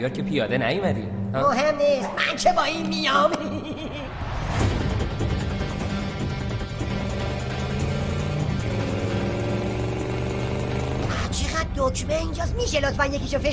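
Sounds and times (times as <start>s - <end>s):
speech: 0.0s - 4.2s, 11.8s - 13.5s
car engine revving as the car pulls away: 4.2s - 13.2s.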